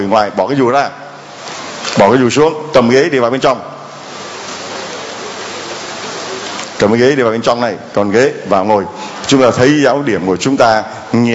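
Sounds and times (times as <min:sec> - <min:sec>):
speech: 0:00.1 - 0:01.0, 0:02.0 - 0:03.7, 0:06.8 - 0:11.3
rain falling outside during a church gathering: 0:03.9 - 0:06.9.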